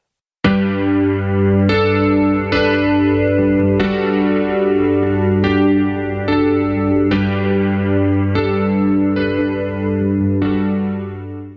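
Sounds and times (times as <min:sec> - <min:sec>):
mellow chorus-laden keyboard chords in a 1980s pop cover song: 0:00.4 - 0:11.5.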